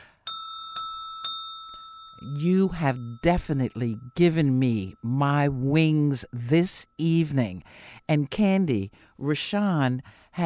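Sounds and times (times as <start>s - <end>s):
small bright bell ringing: 0.0s - 5.4s
speech: 2.2s - 10.4s.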